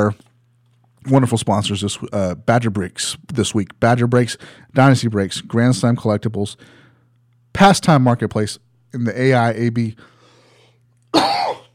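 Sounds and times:
speech: 0.0 - 0.2, 1.0 - 6.8, 7.6 - 10.1, 11.1 - 11.4
low steady hum: 0.0 - 11.7
person coughing: 11.1 - 11.7.

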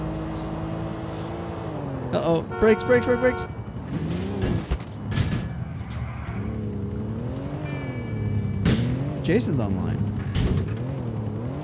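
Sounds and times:
video game car engine droning: 0.0 - 11.6
speech: 2.1 - 4.2, 9.3 - 10.0.

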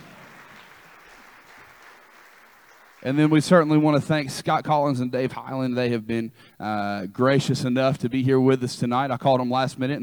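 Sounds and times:
audience applause: 0.0 - 3.8
speech: 3.0 - 10.0.

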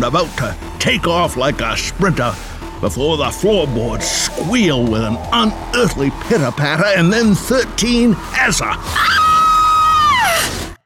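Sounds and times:
speech: 0.0 - 9.2
high-pitched frightened scream: 8.8 - 10.7.

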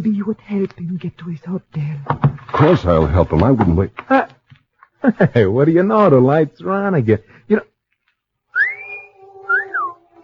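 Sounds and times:
speech: 0.0 - 4.3, 5.0 - 7.7
person giving a two-part whistle at a girl: 8.5 - 10.2.

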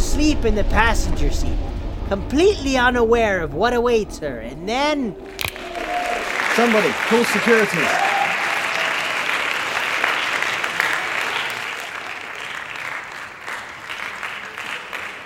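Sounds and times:
speech: 0.2 - 5.4, 6.6 - 8.0
small crowd clapping and cheering: 5.3 - 15.2.

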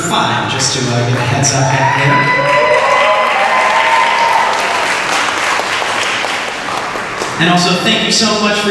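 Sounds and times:
speech: 0.1 - 2.7, 7.4 - 8.7
large crowd applauding: 1.0 - 7.8
crowd cheering with shouts and whoops: 1.2 - 7.3.

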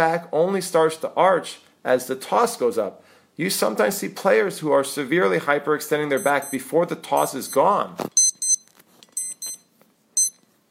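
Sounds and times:
speech: 0.0 - 8.2
electronic alarm beeping: 6.2 - 10.4.

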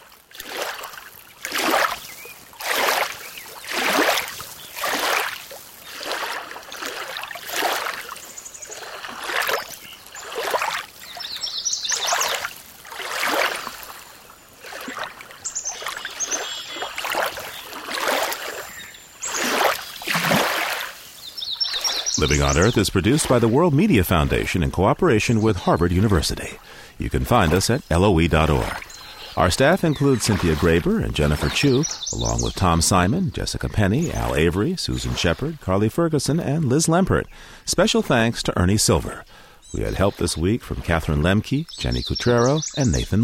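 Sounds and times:
small waves lapping against a lake shore: 0.0 - 23.8, 26.4 - 32.1
faint high chirps of birds: 1.2 - 43.2
speech: 22.2 - 28.8, 29.4 - 43.2.

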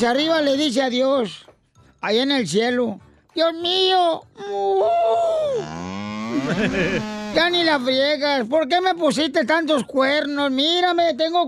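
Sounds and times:
speech: 0.0 - 11.4
bull mooing in a long loud bellow: 5.6 - 7.4
laughter: 6.3 - 7.2.

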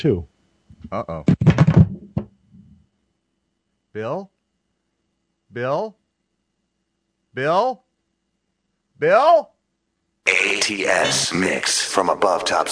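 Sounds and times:
speech: 0.0 - 1.5, 4.0 - 4.3, 5.5 - 6.0, 7.4 - 7.8, 9.0 - 9.5, 10.3 - 12.7
sharp knocks on a door: 1.3 - 2.4
short vocal calls: 10.3 - 11.8.

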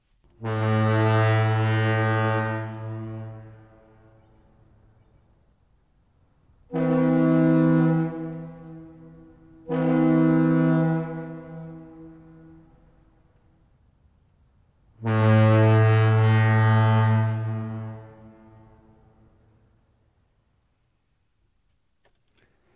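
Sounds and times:
deep booming foghorn in the Bay Area: 0.3 - 4.8, 6.4 - 13.8, 14.9 - 19.8.

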